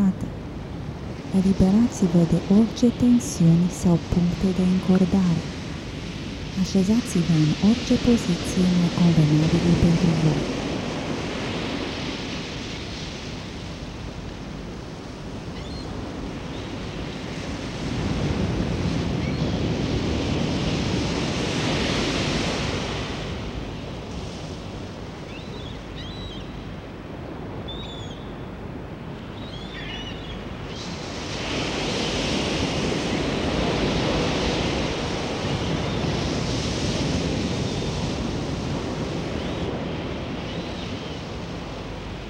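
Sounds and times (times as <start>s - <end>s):
ocean waves breaking on the shore: 0.0s - 42.2s
wind: 0.0s - 42.2s
speech: 1.4s - 5.5s, 6.6s - 10.6s
faint high bird chirps: 25.3s - 26.6s, 27.7s - 28.4s, 29.2s - 31.0s.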